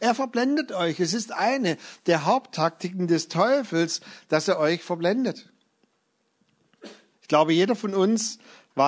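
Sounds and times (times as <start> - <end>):
speech: 0.0 - 5.5, 6.8 - 8.8
person sneezing: 6.8 - 7.2.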